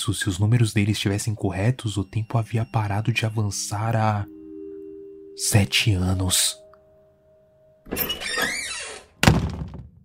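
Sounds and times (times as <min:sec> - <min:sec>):
speech: 0:00.0 - 0:04.4, 0:05.4 - 0:06.6, 0:07.9 - 0:08.6
door creaking and scraping as it swings: 0:07.8 - 0:10.0.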